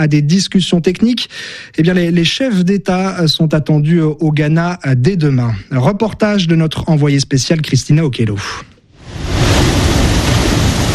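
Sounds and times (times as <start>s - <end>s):
speech: 0.0s - 9.4s
ocean waves roaring: 9.0s - 10.9s.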